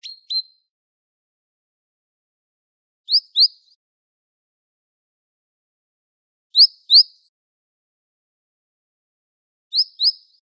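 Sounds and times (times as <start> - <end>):
great tit calling in Wageningen: 6.6 - 7.0, 9.7 - 10.2.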